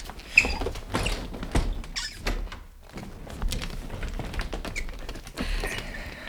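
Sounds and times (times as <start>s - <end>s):
wheelchair rolling across a floor: 0.0s - 6.2s
squeaking wheelchair wheels: 0.1s - 2.4s.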